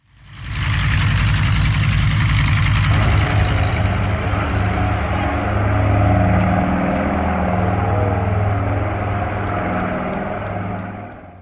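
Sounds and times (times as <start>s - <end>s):
Nord Noratlas piston-propeller aircraft engine drone: 0.0s - 11.3s.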